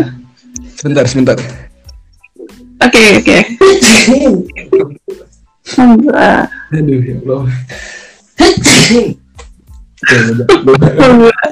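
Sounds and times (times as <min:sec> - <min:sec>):
speech: 0:00.0 - 0:00.2, 0:00.8 - 0:01.7, 0:02.8 - 0:07.9, 0:08.5 - 0:09.2, 0:10.0 - 0:11.5
laughter: 0:04.1 - 0:05.2, 0:10.0 - 0:11.5
person sneezing: 0:08.4 - 0:09.2.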